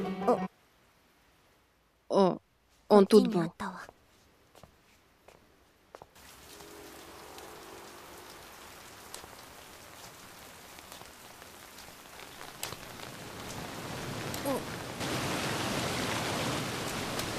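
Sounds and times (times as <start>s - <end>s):
speech: 0.2s - 0.6s, 2.1s - 3.9s
heavy downpour rain: 6.2s - 17.3s.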